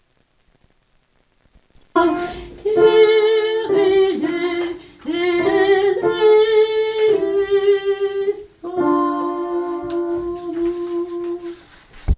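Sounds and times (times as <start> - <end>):
soprano singing a Kyrie: 2.0 - 11.7.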